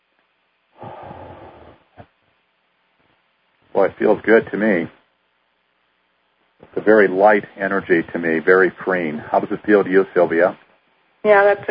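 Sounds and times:
person breathing deeply during a relaxation exercise: 0.8 - 2.0
speech: 3.8 - 5.0, 6.9 - 10.6, 11.2 - 11.7.

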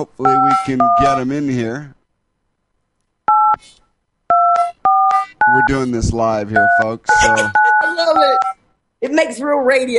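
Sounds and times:
speech: 0.0 - 2.0, 5.5 - 9.9
touch-tone telephone keypad beeps as a number is dialed: 0.3 - 1.2, 4.3 - 5.8, 6.6 - 8.6.

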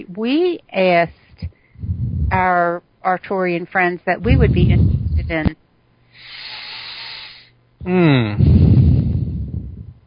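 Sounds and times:
speech: 0.0 - 1.5, 2.3 - 5.6, 7.8 - 8.7
heavy breathing into a microphone: 1.1 - 2.5, 4.3 - 5.5, 6.1 - 7.6, 8.4 - 10.0.

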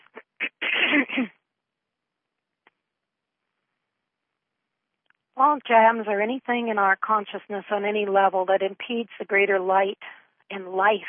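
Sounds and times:
person clearing throat: 0.2 - 1.3
speech: 5.5 - 11.0.

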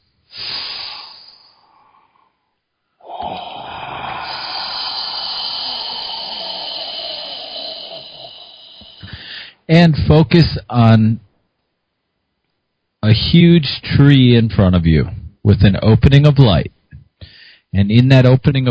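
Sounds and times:
deep breath: 0.0 - 9.7, 17.2 - 17.7
speech: 9.7 - 11.2, 13.0 - 18.7.

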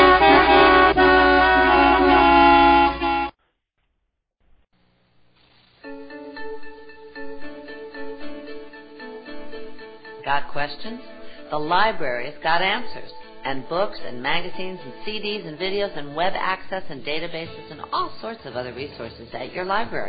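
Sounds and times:
several car horns honking: 0.0 - 3.4
speech: 10.3 - 20.0.

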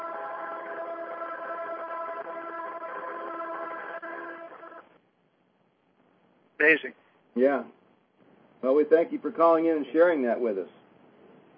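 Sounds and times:
big train passing: 0.0 - 4.8
speech: 6.6 - 7.8, 8.6 - 10.8.

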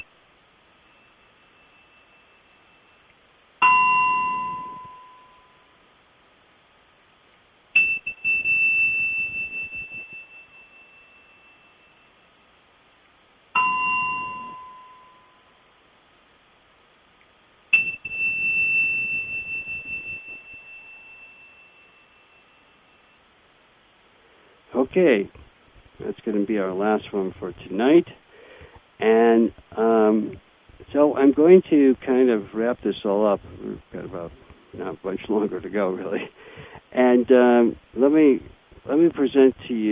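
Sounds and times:
Tibetan bells ringing: 3.6 - 5.7, 7.8 - 12.1, 13.6 - 15.5, 17.8 - 22.7
speech: 24.7 - 25.4, 26.0 - 28.2, 29.0 - 39.9.

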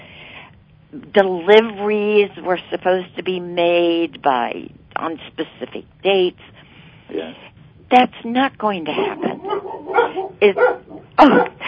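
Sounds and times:
speech: 0.9 - 11.6
dogs barking: 8.9 - 11.6.

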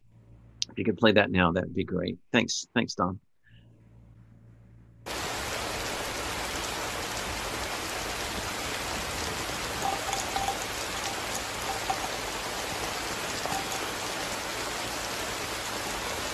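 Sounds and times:
speech: 0.8 - 3.3
steady rain falling: 5.1 - 16.3.

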